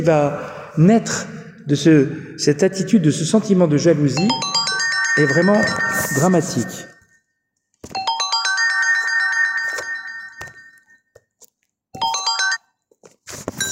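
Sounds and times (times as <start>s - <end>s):
speech: 0.0s - 4.6s, 5.2s - 6.9s
mobile phone ringtone with bright electronic melody: 4.2s - 11.1s, 12.0s - 12.8s, 13.5s - 13.7s.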